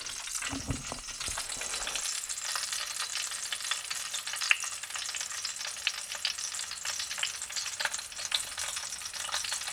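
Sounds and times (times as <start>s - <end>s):
cauliflower sizzling in a pan while cooking: 0.0s - 9.7s.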